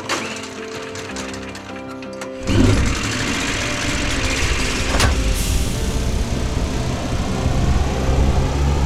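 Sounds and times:
electric flying ship engine roaring and whirring: 2.4 - 8.8
steady tonal humming: 2.4 - 8.8.

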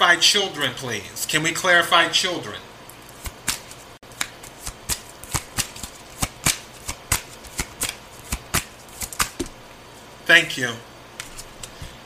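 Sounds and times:
speech: 0.0 - 2.7, 10.4 - 10.9
tarot cards being shuffled: 3.0 - 9.6, 11.2 - 12.0.

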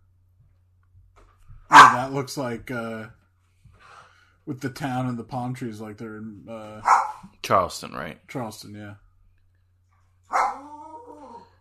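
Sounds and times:
dog barking and yowling: 1.7 - 2.2, 6.8 - 7.3, 10.2 - 11.6
speech: 2.0 - 3.2, 4.5 - 9.0.

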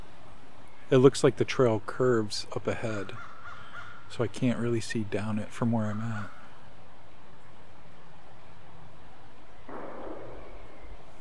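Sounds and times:
quiet outdoor noise: 0.0 - 11.1
speech: 0.9 - 3.3, 4.1 - 6.4
gunshot crack with echo: 9.7 - 11.1.

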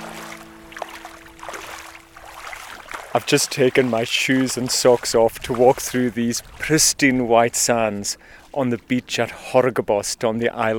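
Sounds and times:
small motorboat engine droning: 0.0 - 5.7
rushing water: 0.0 - 10.7
wind: 0.0 - 10.7
speech: 3.1 - 10.7.

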